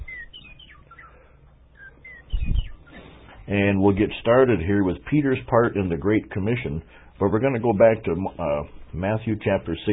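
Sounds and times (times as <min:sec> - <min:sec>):
short high bird chirping calls: 0:00.0 - 0:03.5
speech: 0:03.5 - 0:09.9.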